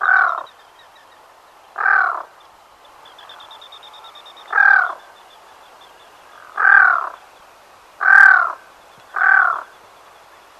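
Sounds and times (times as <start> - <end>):
Black-throated loon repeating hoarse cawing croaks: 0.0 - 0.5, 1.8 - 2.3, 4.5 - 5.0, 6.3 - 7.2, 8.0 - 9.7.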